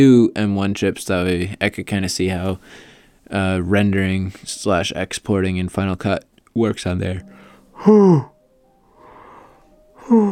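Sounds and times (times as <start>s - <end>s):
speech: 0.0s - 8.3s, 10.1s - 10.3s
person yawning: 7.8s - 8.4s, 10.0s - 10.3s.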